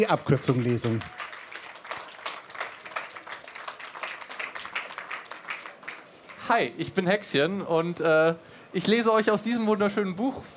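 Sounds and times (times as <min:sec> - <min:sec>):
speech: 0:00.0 - 0:01.2, 0:06.5 - 0:10.5
audience applause: 0:00.0 - 0:06.4.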